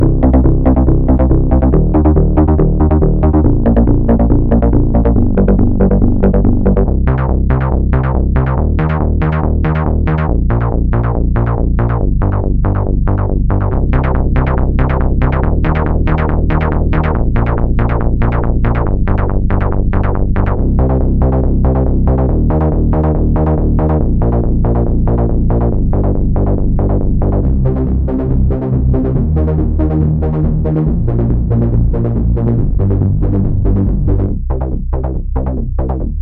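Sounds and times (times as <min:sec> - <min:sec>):
various basses: 0:00.0 - 0:36.1.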